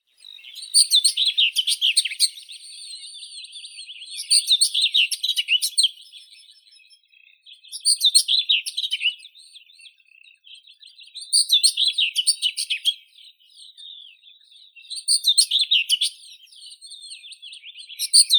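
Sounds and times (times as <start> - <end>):
common whitethroat Sylvia communis singing: 0.0 - 18.3.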